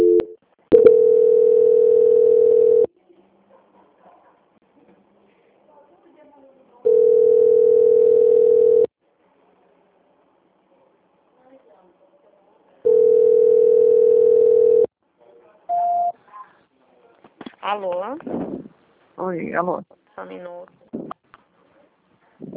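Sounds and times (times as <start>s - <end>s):
telephone line tones during a call-centre call transfer: 0.0s - 2.9s, 6.9s - 8.9s, 12.9s - 14.9s, 15.7s - 16.1s
speech: 19.4s - 20.9s.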